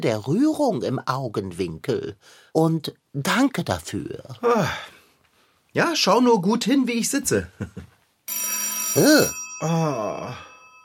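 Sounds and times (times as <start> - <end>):
speech: 0.0 - 5.0, 5.8 - 10.5
telephone ringing with a high warbling electronic trill: 8.3 - 10.8.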